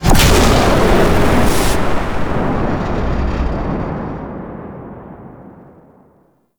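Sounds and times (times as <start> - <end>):
void dragon fire breath cast: 0.0 - 4.3.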